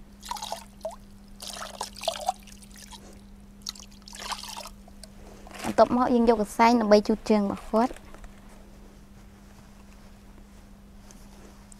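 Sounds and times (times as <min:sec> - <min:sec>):
steady low hum: 0:00.0 - 0:11.7
cold water trickling and splashing while washing a patient's feet: 0:00.2 - 0:04.8
speech: 0:05.8 - 0:08.0.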